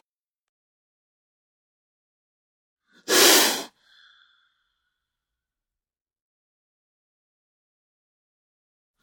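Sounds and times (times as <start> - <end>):
cobra hissing: 3.1 - 4.0.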